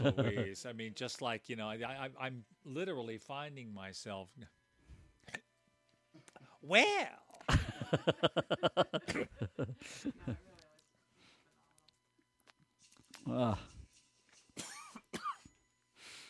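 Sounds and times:
laughter: 0.0s - 0.6s, 7.5s - 10.4s
speech: 0.0s - 4.6s, 6.6s - 10.5s, 13.2s - 13.7s
man coughing: 9.0s - 10.3s, 14.6s - 15.5s.

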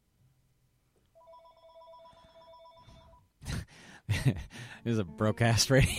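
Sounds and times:
radio station telephone ringing with two-tone electronic trill: 1.2s - 3.2s
speech: 4.2s - 5.9s.

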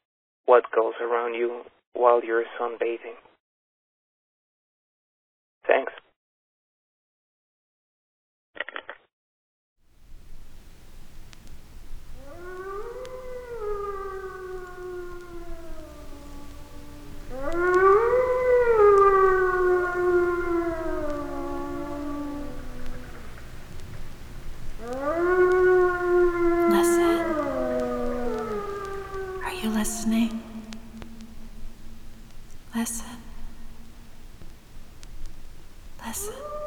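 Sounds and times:
speech: 0.5s - 3.3s, 5.7s - 6.0s
wolves howling: 10.4s - 36.6s.

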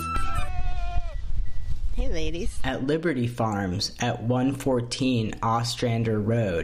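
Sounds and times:
goats and sheep bleating on a farm: 0.1s - 1.2s
speech: 2.2s - 6.6s.

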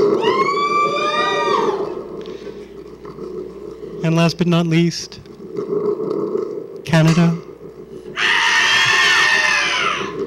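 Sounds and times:
crowd screaming for Latvia: 0.0s - 2.0s, 8.2s - 10.2s
speech: 4.0s - 5.7s, 6.9s - 7.4s.

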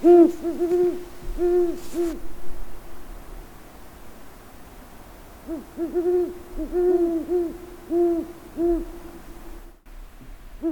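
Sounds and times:
great horned owl hooting: 0.0s - 2.2s, 5.4s - 9.2s
soft hiss of outdoor noise: 0.0s - 10.7s.

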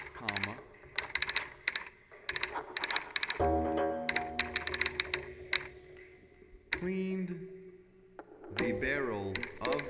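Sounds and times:
typewriter keys clacking as a letter is typed: 0.0s - 3.5s, 4.1s - 5.7s, 8.6s - 9.8s
speech: 6.8s - 7.5s, 8.6s - 9.8s.

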